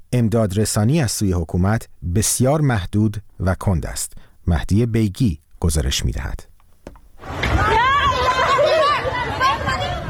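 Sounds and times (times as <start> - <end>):
speech: 0.1 - 6.5
panicked flood victims shouting: 7.3 - 10.0.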